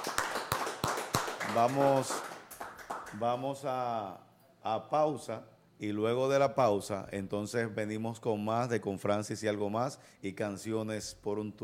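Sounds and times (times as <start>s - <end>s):
sharp spaced-out hand claps: 0.0s - 3.2s
speech: 1.5s - 2.3s, 3.1s - 11.6s.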